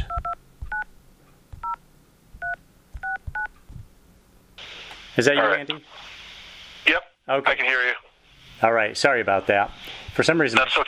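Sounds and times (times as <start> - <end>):
telephone keypad dialing tones as an office number is dialed: 2.4 - 3.5
speech: 5.2 - 6.2, 6.9 - 10.8.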